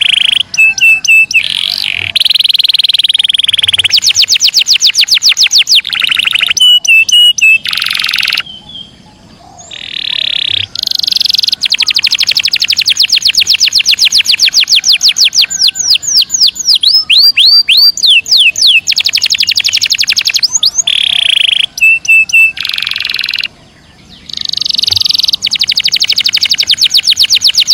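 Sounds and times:
canary singing: 0.0 - 27.7.

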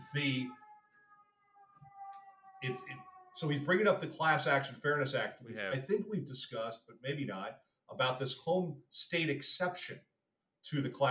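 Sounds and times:
ambulance siren outside: 0.0 - 5.8
speech: 0.1 - 0.6, 2.6 - 11.0.

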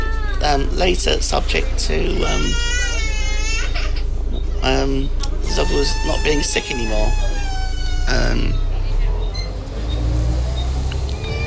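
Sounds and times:
moving bus engine rumble: 0.0 - 11.4
speech: 0.5 - 2.8, 4.6 - 7.3, 8.1 - 8.6
faint squeaks: 2.3 - 9.6, 11.1 - 11.4.

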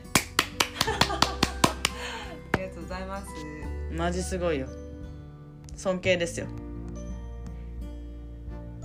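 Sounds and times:
sharp hand claps: 0.0 - 2.8
speech: 3.1 - 4.8, 5.8 - 6.6.

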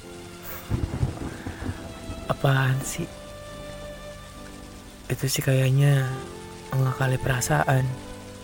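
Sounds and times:
steady rain falling: 0.0 - 8.4
heavier rain drops striking a surface: 0.7 - 3.3
speech: 2.4 - 3.2, 5.1 - 8.1.

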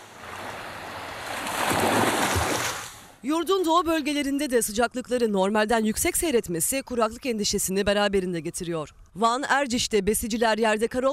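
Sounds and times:
sea waves washing in at a beach in Antalya and Muğla: 0.0 - 3.2
wind: 0.0 - 11.1
speech: 3.2 - 11.1.

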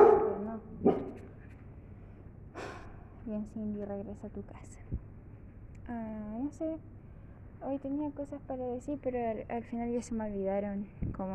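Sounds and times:
dog barking: 0.0 - 1.3
breathy huff or snort: 2.6 - 3.0
speech: 3.3 - 5.2, 5.9 - 7.0, 7.6 - 11.3.

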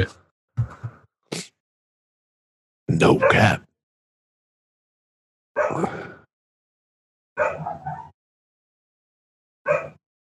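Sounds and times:
speech: 2.9 - 3.7, 5.6 - 6.0
dog barking: 3.2 - 3.5, 5.6 - 5.9, 7.4 - 8.2, 9.7 - 10.0.

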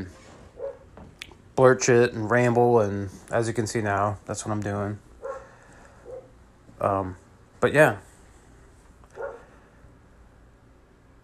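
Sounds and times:
hum at home: 0.0 - 11.2
dog barking: 0.6 - 0.9, 5.2 - 6.3, 9.2 - 9.5
speech: 1.6 - 5.1, 6.8 - 8.1.

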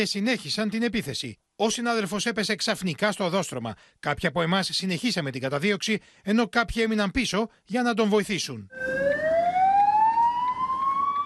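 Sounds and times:
speech: 0.0 - 9.1
ambulance siren wailing: 8.7 - 11.2.

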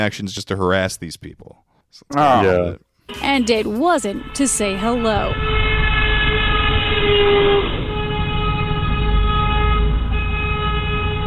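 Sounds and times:
speech: 0.0 - 5.6, 7.0 - 7.8
trolley horn blaring: 3.1 - 11.2.

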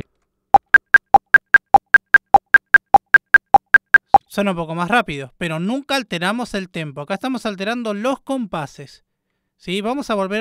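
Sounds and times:
electronic metronome in music software clicking: 0.6 - 4.2
speech: 4.4 - 10.3.

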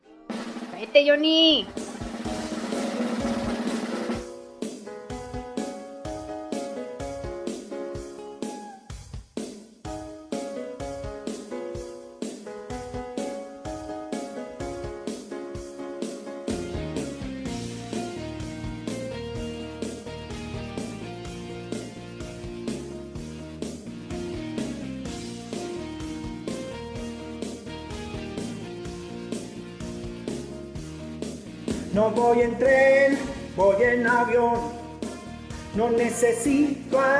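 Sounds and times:
loud upbeat song with full band backing played on air: 0.3 - 4.4, 16.5 - 37.1
speech: 0.8 - 1.8, 32.2 - 34.8, 35.8 - 37.1
singing voice: 31.9 - 35.1, 35.7 - 37.1.

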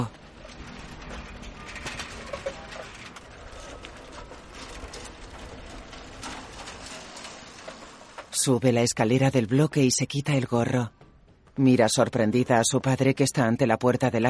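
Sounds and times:
bicycle clicking and rattling while ridden through a neighbourhood: 0.0 - 8.4
continuous broadband street noise in a neighbourhood: 0.0 - 13.5
speech: 8.4 - 11.0, 11.6 - 14.2.

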